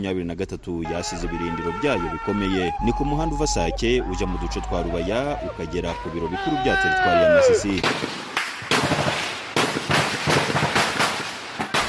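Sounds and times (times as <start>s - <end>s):
speech: 0.0s - 8.3s
gunfire in a forest during fighting: 7.8s - 11.8s.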